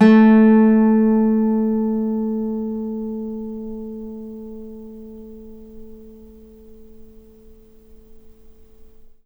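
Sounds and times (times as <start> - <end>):
nylon string guitar: 0.0 - 9.1.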